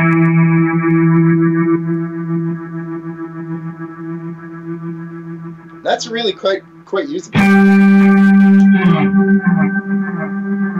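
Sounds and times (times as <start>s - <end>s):
electric guitar octave through delay, tremolo and reverb effects: 0.0s - 10.7s
speech: 5.9s - 9.6s.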